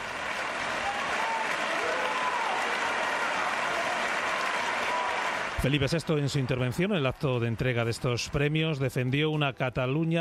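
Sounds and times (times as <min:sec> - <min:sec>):
sustained applause from a large crowd: 0:00.0 - 0:09.4
speech: 0:05.6 - 0:10.1.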